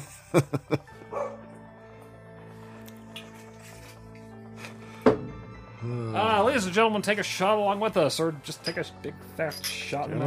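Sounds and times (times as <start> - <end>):
speech: 0.3 - 1.0, 5.8 - 10.2
dog barking: 1.1 - 1.5.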